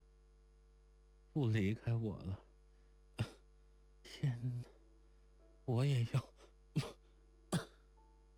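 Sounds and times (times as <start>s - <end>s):
speech: 1.4s - 2.5s, 4.3s - 4.7s, 5.7s - 6.4s
person coughing: 3.2s - 3.4s, 6.1s - 7.8s.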